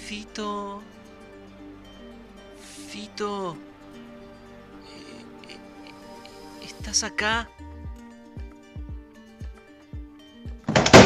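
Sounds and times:
eerie musical drone: 0.0s - 8.8s
speech: 0.1s - 1.0s, 3.0s - 3.7s, 6.8s - 7.7s
bathroom stall door banging open: 10.7s - 11.0s.

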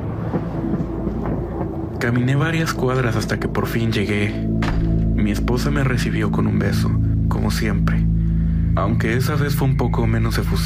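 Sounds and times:
thunder rumbling: 0.0s - 6.1s
speech: 2.0s - 4.6s, 5.2s - 8.1s, 8.8s - 10.6s.

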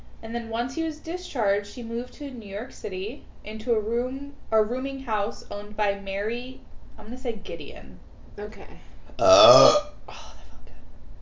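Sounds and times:
speech: 0.2s - 10.2s
person burping after drinking: 9.2s - 10.0s.

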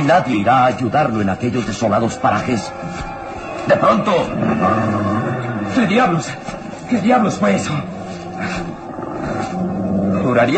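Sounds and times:
speech: 0.0s - 5.1s, 5.8s - 8.7s, 10.2s - 10.5s
deep menacing animal growl: 4.2s - 6.4s, 7.2s - 10.5s.

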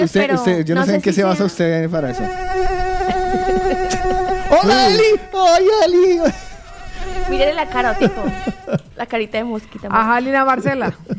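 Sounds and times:
speech: 0.0s - 11.1s
laughter: 2.0s - 9.0s, 10.3s - 11.1s
fly buzzing: 2.0s - 10.1s.

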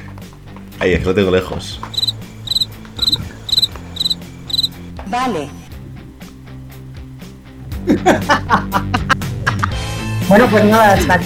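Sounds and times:
speech: 0.8s - 2.1s, 5.1s - 5.6s, 7.9s - 9.1s, 10.3s - 11.2s
cricket chirping in pulsing trills: 1.8s - 7.7s
laughter: 7.8s - 9.8s.

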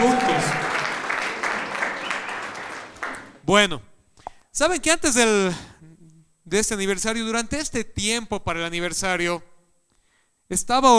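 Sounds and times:
large crowd applauding: 0.0s - 3.4s
people shouting and cheering: 0.0s - 3.4s
speech: 3.5s - 3.9s, 4.6s - 5.7s, 6.5s - 9.5s, 10.5s - 10.9s.

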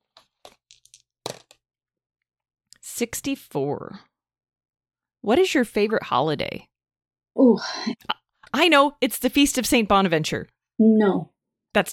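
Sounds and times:
tie-dye dice rolled on a table: 0.2s - 1.6s
speech: 3.0s - 4.1s, 5.2s - 6.7s, 7.4s - 11.9s.

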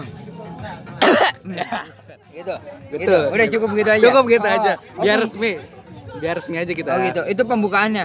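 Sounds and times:
person coughing deliberately: 1.0s - 1.8s
speech: 1.2s - 8.0s.

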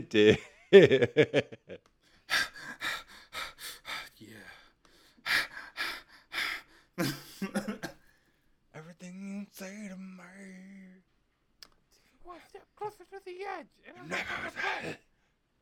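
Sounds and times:
speech: 0.1s - 2.5s, 12.6s - 15.1s
laughter: 0.2s - 1.8s, 13.9s - 15.1s
person panting heavily after exercise: 2.1s - 7.4s, 14.0s - 15.0s.

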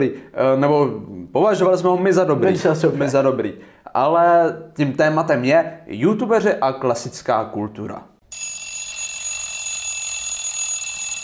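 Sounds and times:
speech: 0.0s - 8.1s
alarm clock ringing with shrill electronic tone: 8.3s - 11.2s.

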